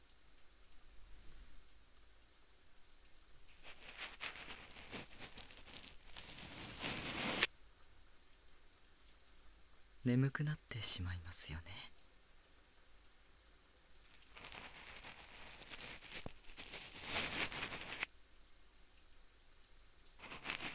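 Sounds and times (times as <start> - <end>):
soft rain pattering: 0.0 - 20.7
cotton swab crackling and rubbing: 3.5 - 7.5, 14.1 - 18.1, 20.2 - 20.7
speech: 10.0 - 11.9.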